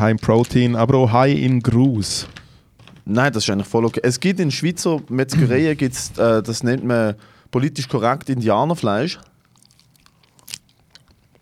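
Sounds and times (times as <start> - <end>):
speech: 0.0 - 2.4, 3.1 - 9.3
chewing food: 8.2 - 11.4
sharp crunchy bite: 9.2 - 11.4.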